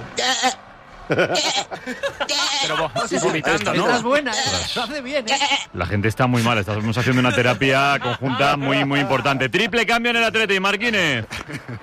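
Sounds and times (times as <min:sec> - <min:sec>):
goat bleating loudly: 0:00.2 - 0:00.6, 0:01.3 - 0:02.8, 0:03.9 - 0:05.8
laughter: 0:00.2 - 0:04.6, 0:05.8 - 0:09.7, 0:11.2 - 0:11.8
speech: 0:00.4 - 0:11.8.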